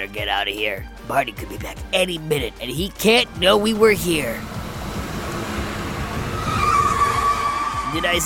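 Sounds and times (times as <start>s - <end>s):
speech: 0.0s - 4.5s, 7.9s - 8.2s
orange van rumbling: 2.1s - 8.2s
van tires screeching as it brakes to a stop: 3.6s - 8.2s.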